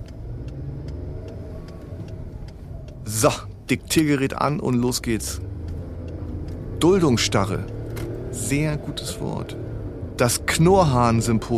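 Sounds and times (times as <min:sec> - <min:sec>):
car engine rumble inside a moving car: 0:00.0 - 0:11.5
faint regular ticking: 0:00.0 - 0:11.5
road noise: 0:00.0 - 0:11.5
speech: 0:03.1 - 0:05.5, 0:06.8 - 0:07.7, 0:08.4 - 0:11.5.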